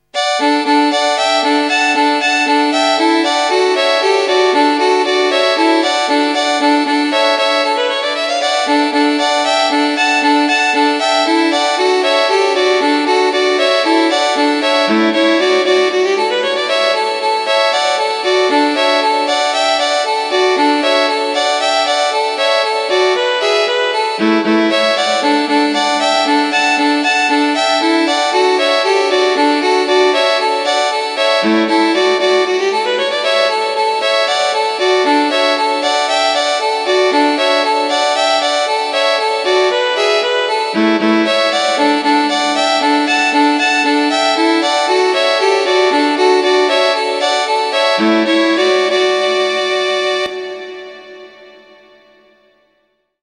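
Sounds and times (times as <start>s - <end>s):
solo violin: 0.0s - 52.2s.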